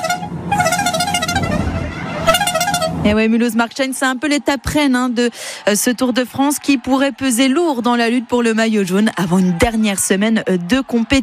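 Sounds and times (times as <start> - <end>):
musical car horn blasts from the Tour de France publicity caravan: 0.0 - 3.2
busy roadside crowd: 0.0 - 11.2
speech: 3.0 - 11.2.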